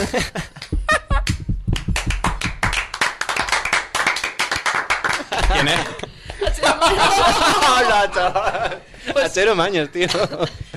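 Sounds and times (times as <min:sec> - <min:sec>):
speech: 0:00.0 - 0:00.6, 0:05.6 - 0:10.7
laughter: 0:00.0 - 0:01.2, 0:05.1 - 0:10.7
applause from a small group: 0:00.5 - 0:06.5.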